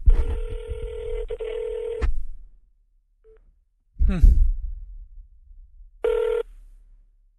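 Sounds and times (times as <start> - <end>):
telephone ringback tone on an outgoing call: 0.2 - 2.0, 6.1 - 6.5.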